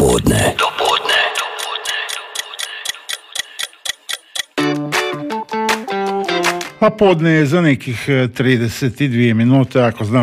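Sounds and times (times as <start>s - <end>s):
clock ticking: 0.0s - 5.6s
loud run of bright sustained melodic tones: 4.4s - 7.2s
speech: 6.8s - 10.2s.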